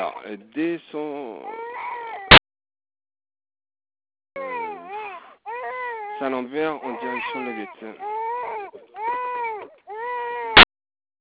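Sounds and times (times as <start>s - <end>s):
speech: 0.0s - 1.8s, 6.2s - 8.1s
4-month-old baby crying in a stuck truck: 1.4s - 2.4s, 4.4s - 10.7s.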